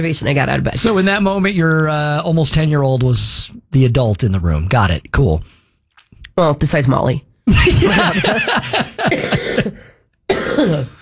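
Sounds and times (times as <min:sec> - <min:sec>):
speech: 0:00.0 - 0:05.6, 0:06.4 - 0:10.9
laughter: 0:07.5 - 0:09.7
person coughing harshly: 0:08.7 - 0:10.9.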